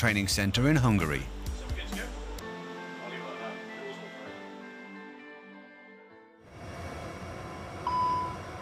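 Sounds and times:
speech: 0.0s - 1.4s
electronic warning beep from a cockpit GPS jamming alert: 7.8s - 8.4s.

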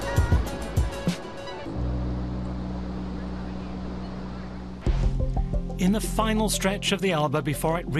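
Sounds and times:
wind at a riverside beach on the Elbe: 0.0s - 5.7s
low engine drone of a passing ship on the Elbe: 1.6s - 5.8s
speech: 5.8s - 7.9s.

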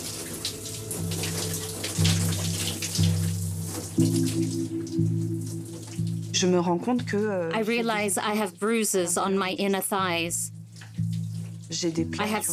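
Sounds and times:
shower water spraying and splashing: 0.0s - 6.4s
low sustained musical drone shifting pitch: 0.0s - 8.3s
speech: 6.4s - 10.5s, 11.8s - 12.5s.

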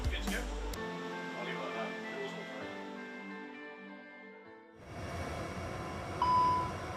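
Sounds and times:
sustained tonal music: 0.6s - 6.9s
steady hum of cockpit simulator noise: 4.9s - 6.9s
GPS-jamming warning beep in a commercial aircraft cockpit simulator: 6.2s - 6.7s.

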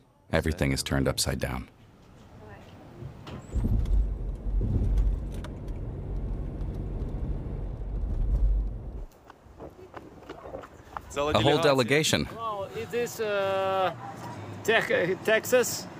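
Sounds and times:
speech: 0.3s - 1.8s, 11.2s - 15.9s
car engine rumbling as the vehicle rolls to a stop: 2.8s - 9.1s.

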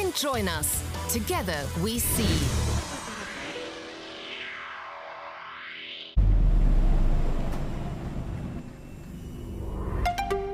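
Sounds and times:
speech: 0.2s - 2.7s
petrol car engine roaring as it accelerates: 6.2s - 9.7s.

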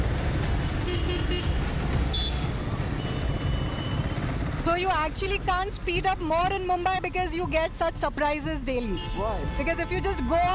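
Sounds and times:
steady dense road traffic in Mumbai: 0.0s - 10.5s
short car horn toots: 0.8s - 4.0s, 8.8s - 10.5s
speech: 4.8s - 10.5s.

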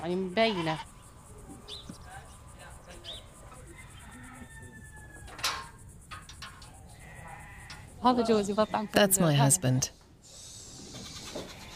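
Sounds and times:
sheep bleating in a stall while being fed: 0.0s - 0.9s, 7.0s - 9.1s, 11.0s - 11.7s
speech: 0.0s - 1.0s, 8.0s - 10.0s
quiet insect-like hum: 0.0s - 11.7s.

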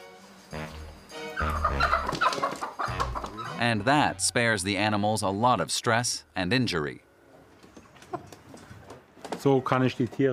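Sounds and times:
chickens clucking and squawking in a poultry farmer's stall: 1.4s - 3.6s
speech: 3.6s - 7.1s, 9.4s - 10.3s.

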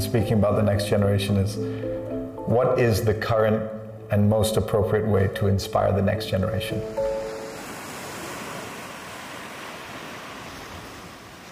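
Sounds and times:
speech: 0.1s - 7.2s
ocean surf washing onto a beach: 6.8s - 11.5s
wind: 6.8s - 11.5s.

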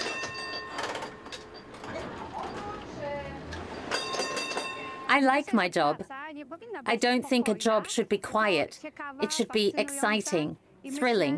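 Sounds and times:
tram rolling along city rail tracks over 140 years old: 0.0s - 5.3s
tram wheels squealing and grinding over the rails: 0.8s - 4.8s
speech: 5.2s - 11.3s.

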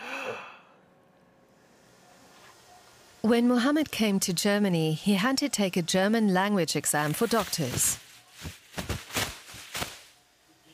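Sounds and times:
deep breath drawn in on request: 0.0s - 0.8s
speech: 0.3s - 0.5s, 3.2s - 8.6s.

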